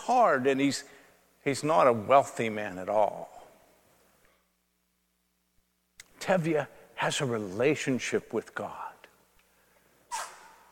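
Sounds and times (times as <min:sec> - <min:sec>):
speech: 0:00.1 - 0:03.4, 0:06.2 - 0:08.8
person sneezing: 0:10.1 - 0:10.6.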